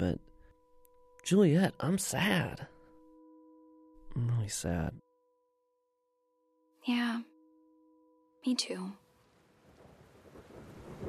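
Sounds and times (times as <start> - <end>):
speech: 0.0 - 0.3, 1.2 - 2.7, 4.2 - 5.0, 6.8 - 7.3, 8.4 - 9.0
steady dense rain pouring: 9.3 - 11.0.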